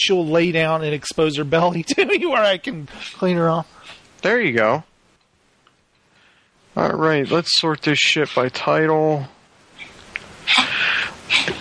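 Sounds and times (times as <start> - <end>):
speech: 0.0 - 4.9, 6.8 - 9.4, 10.5 - 11.6
dog coughing: 10.5 - 11.6.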